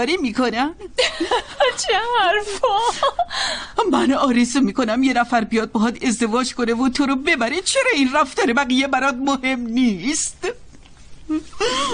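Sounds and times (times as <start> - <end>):
speech: 0.0 - 10.6, 11.3 - 11.9
woman crying: 0.9 - 3.7, 11.3 - 11.9.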